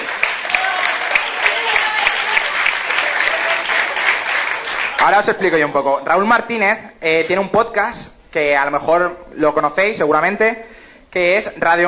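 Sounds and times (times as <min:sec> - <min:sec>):
audience applause welcoming a performer: 0:00.0 - 0:05.5
speech: 0:05.0 - 0:11.8.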